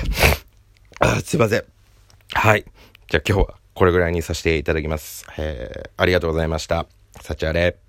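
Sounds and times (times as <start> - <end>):
person sneezing: 0.0 - 1.4
speech: 1.1 - 1.7, 2.3 - 7.8.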